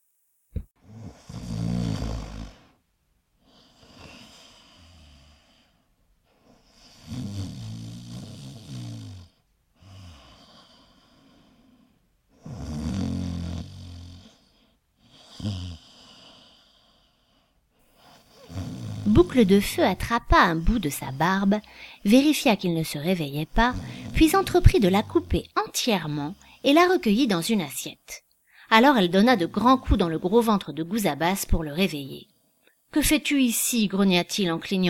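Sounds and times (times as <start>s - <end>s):
loud rumbling open-mouthed snoring: 0.8s - 2.8s, 3.4s - 5.8s, 6.4s - 20.6s, 23.5s - 26.9s
speech: 19.2s - 32.3s, 32.9s - 34.8s.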